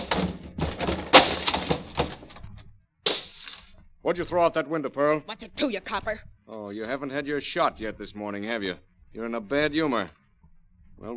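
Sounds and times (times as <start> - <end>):
door being forced open: 0.0 - 2.7
speech: 4.1 - 10.2, 11.0 - 11.1.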